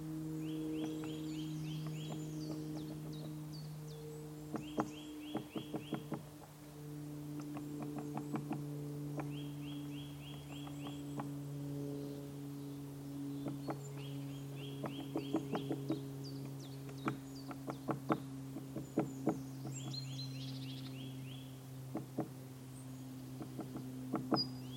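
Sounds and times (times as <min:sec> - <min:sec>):
birdsong: 0:00.0 - 0:24.7
steady low hum: 0:00.0 - 0:24.7
spotted woodpecker hammering on a tree trunk: 0:00.5 - 0:03.5, 0:04.4 - 0:06.5, 0:07.3 - 0:11.4, 0:13.4 - 0:22.4, 0:23.2 - 0:24.7.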